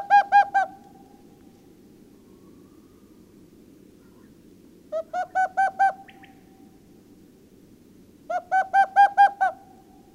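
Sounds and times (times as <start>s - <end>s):
owl hooting: 0.0s - 1.2s, 4.0s - 6.6s, 8.3s - 10.1s
soft low hum: 0.7s - 8.3s.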